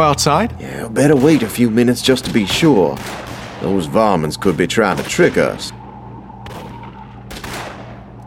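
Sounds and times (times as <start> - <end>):
speech: 0.0 - 5.8
steady rumbling: 0.0 - 8.2
gunfire from a stamp mill at a mine's headquarters during a gun battle: 1.0 - 5.8, 6.4 - 8.1.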